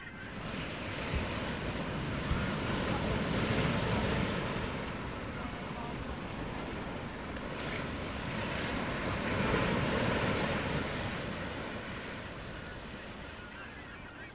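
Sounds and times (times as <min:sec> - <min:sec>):
ocean: 0:00.0 - 0:14.3.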